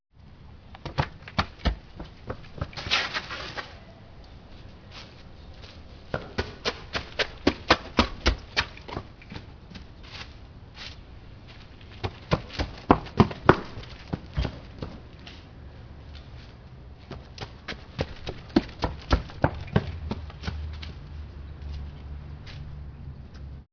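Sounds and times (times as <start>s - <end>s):
running on gravel: 0.8s - 3.8s, 5.0s - 10.4s, 11.4s - 15.4s, 16.2s - 21.9s.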